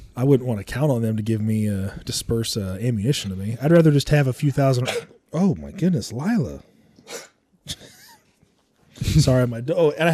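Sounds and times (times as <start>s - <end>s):
speech: 0.2s - 7.9s, 9.0s - 10.1s
dog coughing: 4.8s - 5.2s, 7.0s - 8.0s.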